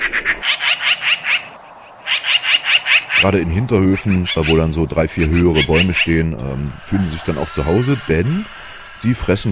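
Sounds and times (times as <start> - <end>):
magpie chattering call: 0.2 - 9.5
speech: 3.3 - 9.5.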